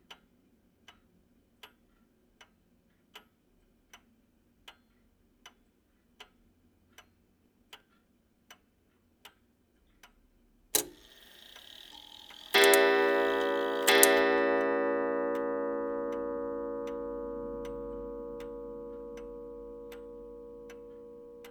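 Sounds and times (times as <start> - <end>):
antique clock ticking: 10.8 - 21.4.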